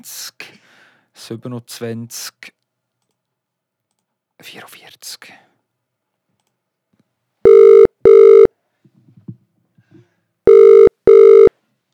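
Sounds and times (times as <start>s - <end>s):
speech: 0.0s - 0.4s, 1.2s - 2.6s, 4.4s - 5.5s
ringback tone of an outgoing phone call: 7.5s - 8.5s, 10.5s - 11.5s.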